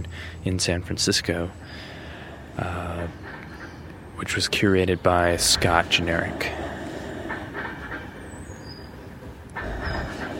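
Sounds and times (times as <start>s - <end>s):
speech: 0.2s - 2.0s, 2.6s - 3.3s, 4.2s - 6.6s
train rolling along rails: 1.5s - 10.3s.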